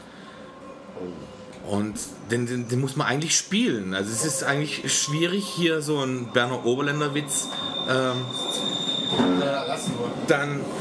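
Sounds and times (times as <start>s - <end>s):
speech: 1.0s - 10.7s
train wheels squealing with high-pitched metallic squeal: 2.3s - 10.7s
train rumbling past: 4.1s - 10.7s.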